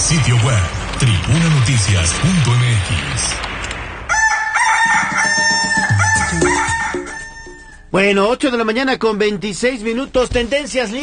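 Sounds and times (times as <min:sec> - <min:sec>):
speech: 0:00.1 - 0:03.6, 0:07.9 - 0:11.0
rooster crowing: 0:04.1 - 0:07.9.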